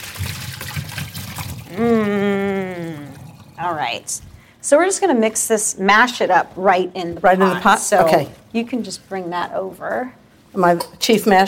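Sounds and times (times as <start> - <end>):
water draining from a pot pouring into a sink: 0.0 - 4.4
speech: 1.7 - 2.2, 3.6 - 11.4.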